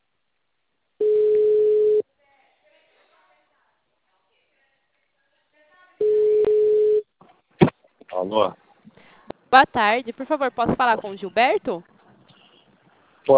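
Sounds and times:
telephone dial tone while placing a call: 1.0s - 2.0s, 6.0s - 7.0s
speech: 8.2s - 8.6s, 9.5s - 11.9s.

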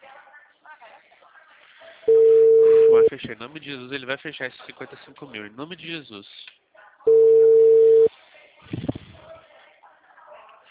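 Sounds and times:
telephone line tone while placing a call: 2.1s - 3.1s, 7.1s - 8.1s
speech: 3.0s - 6.5s.

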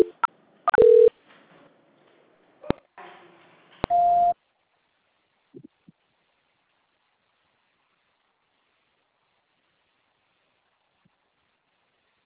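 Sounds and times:
short electronic telephone beeps during a call transfer: 0.0s - 1.1s, 3.9s - 4.4s
steady held telephone line tones: 0.0s - 1.1s.

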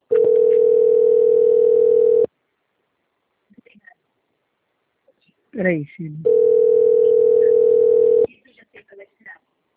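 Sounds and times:
phone ringing with an incoming call: 0.1s - 2.3s, 6.2s - 8.3s
speech: 5.6s - 6.4s.

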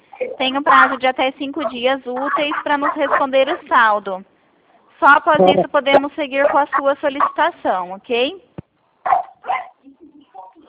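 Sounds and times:
speech: 0.4s - 4.3s, 5.0s - 8.5s
dog barking over a phone call: 0.7s - 3.7s, 5.9s - 7.5s, 9.0s - 9.8s.

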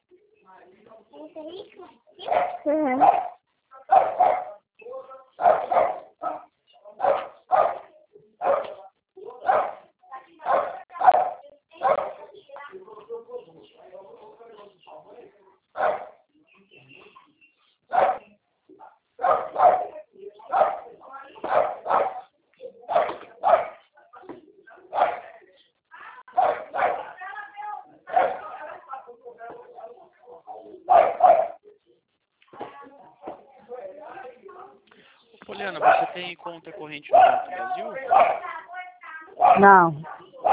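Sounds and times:
speech: 0.7s - 4.1s, 36.6s - 38.3s, 39.6s - 40.0s
small dog barking and yipping: 2.2s - 4.5s, 5.4s - 8.8s, 9.4s - 9.8s, 10.4s - 12.3s, 15.8s - 16.2s, 17.9s - 18.3s, 19.2s - 22.3s, 22.9s - 23.8s, 24.9s - 25.3s, 26.3s - 27.2s, 28.1s - 28.6s, 30.9s - 31.6s, 35.8s - 36.2s, 37.1s - 38.5s, 39.4s - 39.7s, 40.4s - 40.5s.

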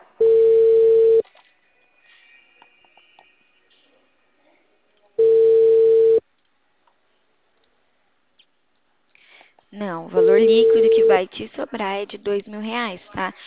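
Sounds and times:
faint noise: 0.0s - 13.4s
telephone line tones while placing a call: 0.2s - 1.2s, 5.2s - 6.2s
speech: 10.1s - 13.4s.

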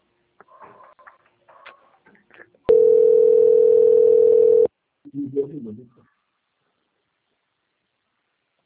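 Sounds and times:
telephone line tone during call transfer: 2.7s - 4.7s
people talking: 5.1s - 6.0s.

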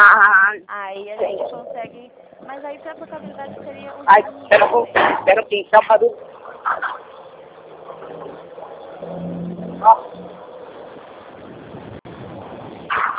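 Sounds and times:
voice fragments: 0.0s - 10.4s
truck engine droning past on a street: 0.0s - 13.1s
speech: 1.9s - 7.1s, 9.8s - 10.2s.

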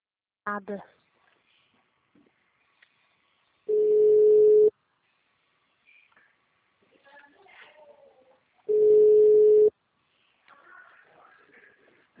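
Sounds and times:
speech: 0.5s - 1.0s
telephone tone beeps after a dropped call: 3.7s - 4.7s, 8.7s - 9.7s.

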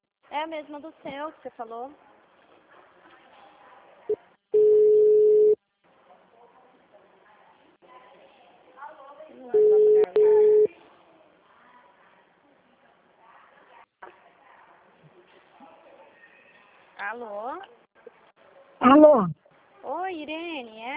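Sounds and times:
speech: 0.4s - 2.1s, 17.1s - 17.8s, 18.8s - 19.4s, 20.0s - 20.9s
telephone tones after a dropped call: 4.6s - 5.6s, 9.6s - 10.7s.

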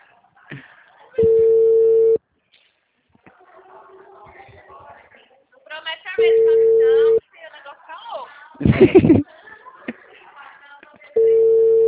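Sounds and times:
telephone ring tone as a call is placed: 1.2s - 2.2s, 6.2s - 7.2s, 11.2s - 11.8s
laughter: 8.6s - 11.2s
speech: 8.8s - 9.2s.

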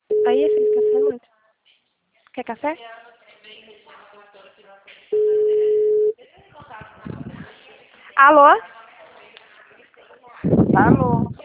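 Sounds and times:
telephone busy tone after a dropped call on a poor rural line: 0.1s - 1.1s, 5.2s - 6.1s
speech: 0.2s - 1.3s, 2.4s - 3.1s, 8.2s - 8.8s, 10.4s - 11.4s
faint voices: 0.4s - 11.4s
telephone line noise: 5.2s - 6.1s.

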